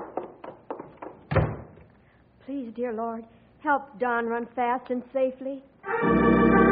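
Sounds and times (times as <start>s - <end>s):
wooden door being opened: 1.2s - 1.9s
speech: 2.5s - 6.6s.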